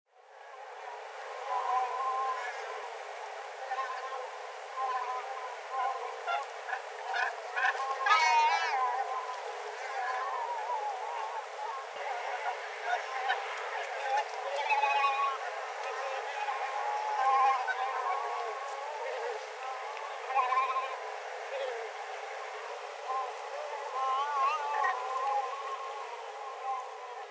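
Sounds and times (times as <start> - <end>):
Pelagic Cormorant in Sarufutsu: 0.4 - 27.2.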